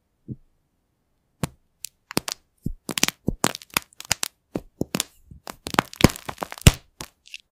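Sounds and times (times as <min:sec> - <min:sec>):
crushing chalky soap crunching: 0:01.8 - 0:07.5.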